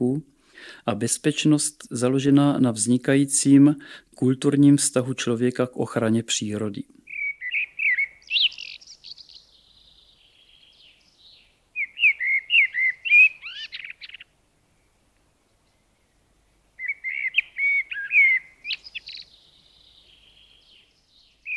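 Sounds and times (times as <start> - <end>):
speech: 0.0 - 7.0
common blackbird singing: 7.0 - 16.2, 16.8 - 21.5.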